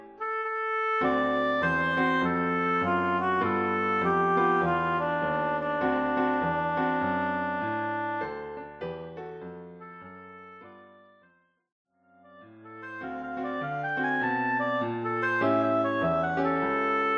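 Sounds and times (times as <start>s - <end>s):
oboe: 0.2s - 8.8s, 12.4s - 17.1s.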